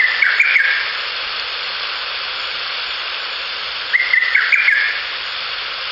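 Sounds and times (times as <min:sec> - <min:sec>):
lesser cuckoo song: 0:00.0 - 0:00.9, 0:03.9 - 0:05.0
hissing noise: 0:00.0 - 0:05.8.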